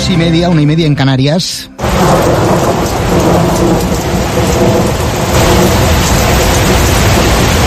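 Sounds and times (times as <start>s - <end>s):
speech: 0.1s - 4.5s
deep thunder rumbling: 1.8s - 7.6s
heavy rain pouring: 1.8s - 7.6s.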